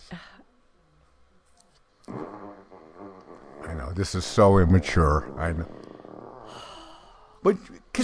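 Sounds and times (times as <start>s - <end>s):
long squeaky fart sound effect from a smart speaker: 2.1s - 5.8s
speech: 4.0s - 5.8s, 7.4s - 8.0s.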